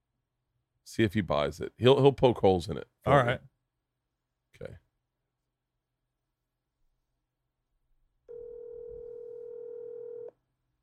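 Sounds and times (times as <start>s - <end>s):
speech: 0.9s - 3.5s, 4.6s - 4.8s
telephone dial tone while placing a call: 8.3s - 10.3s.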